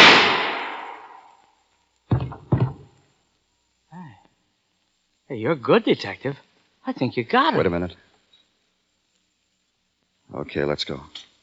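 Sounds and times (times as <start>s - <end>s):
gunshot: 0.0s - 1.4s
speech: 5.3s - 8.1s, 10.3s - 11.3s.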